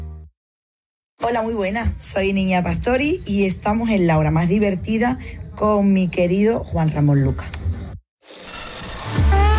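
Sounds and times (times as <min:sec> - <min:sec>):
speech: 0:01.2 - 0:07.6
train wheels squealing on rails in Santander: 0:08.3 - 0:09.4.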